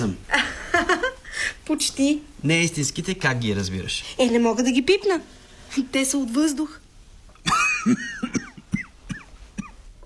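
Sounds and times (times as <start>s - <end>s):
speech: 0.0s - 6.8s, 7.8s - 8.4s
person coughing after choking: 7.5s - 9.8s.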